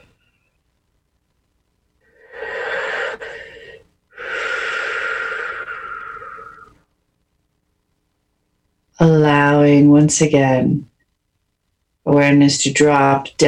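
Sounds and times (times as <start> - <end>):
deep breath drawn into the chest: 2.1 - 6.8
speech: 10.0 - 10.9, 12.2 - 13.4.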